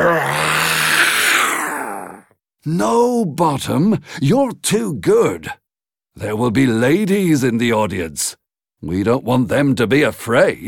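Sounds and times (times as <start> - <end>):
person imitating a lion's roar with the voice: 0.0 - 2.4
speech: 2.6 - 5.6, 6.2 - 10.6.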